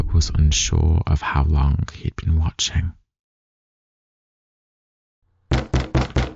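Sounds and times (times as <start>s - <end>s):
speech: 0.2s - 3.0s
knocking on a library door: 5.5s - 6.3s.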